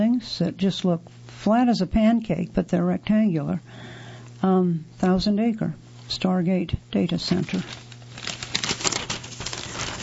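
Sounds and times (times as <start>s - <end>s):
speech: 0.2s - 7.8s
paper page turning: 7.3s - 10.0s.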